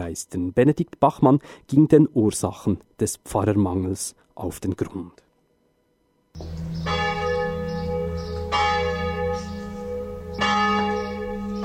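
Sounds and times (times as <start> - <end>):
speech: 0.1 - 5.2
church bells ringing for service: 6.4 - 11.6.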